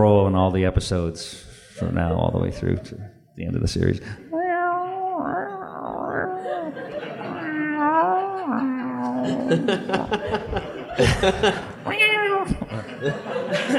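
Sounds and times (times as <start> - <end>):
speech: 0.0 - 4.3, 8.4 - 13.7
laughter: 1.8 - 4.2, 6.1 - 13.7
person imitating a dying cat yowl: 4.3 - 10.1.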